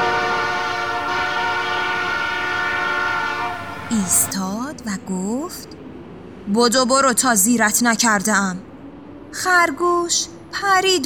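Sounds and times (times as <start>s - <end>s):
train blowing a long sustained whistle: 0.0s - 4.3s
rumble of moving rail cars: 0.0s - 11.0s
speech: 3.9s - 8.7s, 9.3s - 11.0s.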